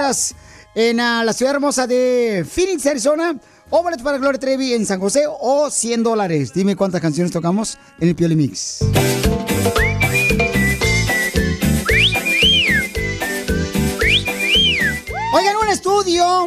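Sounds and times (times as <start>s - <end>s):
speech: 0.0s - 9.4s
loud rhythmic music: 0.0s - 16.4s
person whistling a bright melodic tune: 9.7s - 15.5s, 16.2s - 16.4s.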